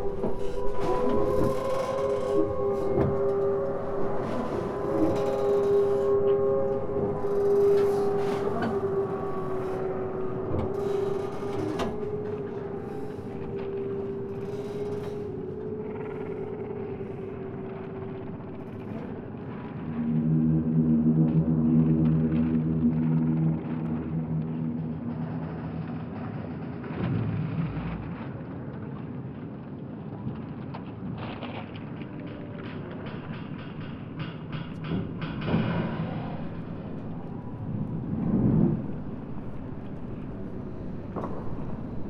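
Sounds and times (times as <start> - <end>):
floating pontoons groaning and creaking as water shifts them: 0.0 - 42.0
sharp knocks and clanks: 32.4 - 37.4.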